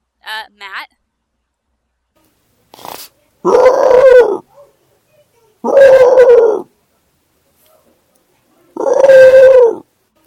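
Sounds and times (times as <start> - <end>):
speech: 0.3 - 1.0, 3.4 - 3.8
person imitating dog howling: 3.4 - 4.4, 5.6 - 6.7, 8.8 - 9.8.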